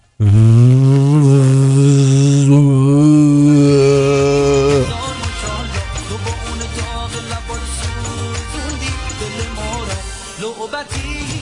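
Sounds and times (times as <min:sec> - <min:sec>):
voice imitating a vacuum cleaner with the mouth: 0:00.0 - 0:05.0.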